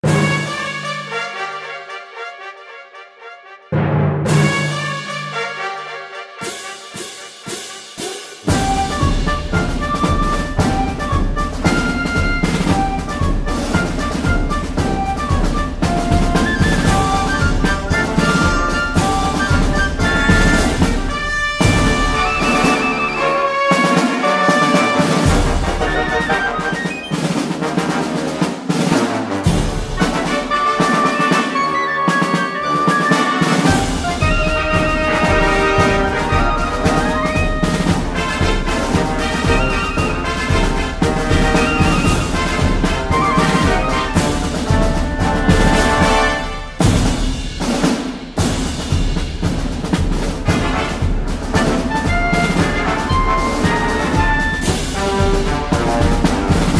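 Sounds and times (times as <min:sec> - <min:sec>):
march music: 0:00.0 - 0:56.7.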